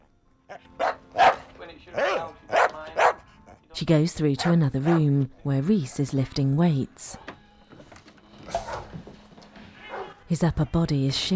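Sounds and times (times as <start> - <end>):
small dog barking angrily: 0.5 - 3.2, 4.8 - 5.0
speech: 3.8 - 7.3, 10.3 - 11.3.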